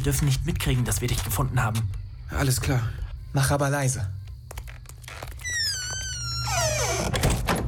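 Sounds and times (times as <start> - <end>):
speech: 0.0 - 4.2
door hinge squealing as door swings shut: 5.4 - 7.5.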